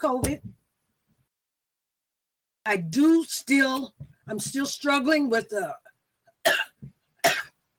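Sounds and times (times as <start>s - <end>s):
speech: 0.0s - 0.6s, 2.6s - 5.8s
person coughing from an upper respiratory issue: 6.5s - 7.6s.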